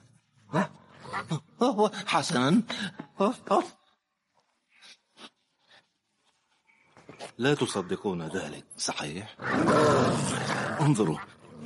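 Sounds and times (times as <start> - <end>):
speech: 1.3 - 3.8, 7.4 - 11.4
dogs growling: 9.4 - 11.6.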